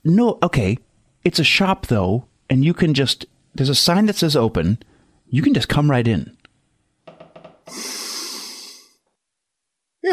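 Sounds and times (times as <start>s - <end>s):
speech: 0.0s - 6.4s, 7.7s - 8.0s
breathy puffs: 7.6s - 9.0s.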